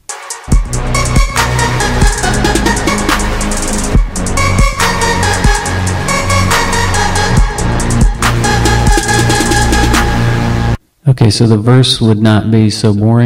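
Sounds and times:
dense synth-driven chorus with a vocal-like formant lead: 0.4 - 10.8
speech: 11.2 - 13.2.

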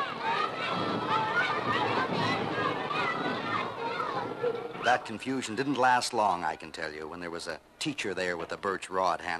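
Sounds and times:
children running in from a schoolyard: 0.0 - 5.2
crowd of children chattering and shouting in a schoolyard: 0.0 - 7.0
speech: 4.8 - 9.3.

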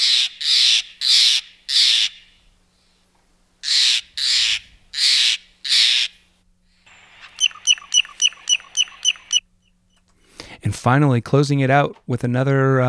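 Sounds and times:
Steller's jay squawking: 0.0 - 2.3, 3.6 - 6.2, 6.9 - 9.8
speech: 10.7 - 12.8.

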